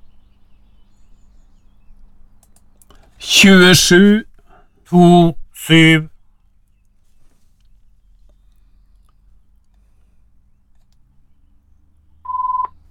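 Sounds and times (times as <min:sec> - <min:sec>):
speech: 0:03.3 - 0:04.3, 0:04.9 - 0:06.1
telephone tone: 0:12.3 - 0:12.8.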